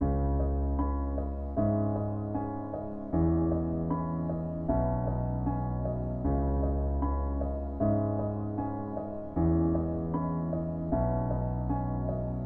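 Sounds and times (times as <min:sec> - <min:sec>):
cinematic brooding piano in C sharp: 0:00.0 - 0:12.4.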